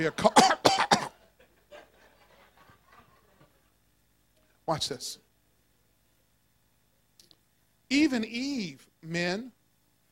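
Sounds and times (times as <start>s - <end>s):
speech: 0.0s - 0.5s, 4.7s - 5.2s, 7.9s - 9.6s
harsh coughs: 0.2s - 1.2s
laughter: 1.2s - 3.8s.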